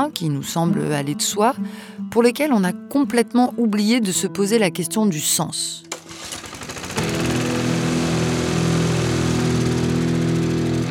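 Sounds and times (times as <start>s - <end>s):
speech: 0.0s - 6.3s
lawn mower engine starting and running: 5.9s - 10.8s.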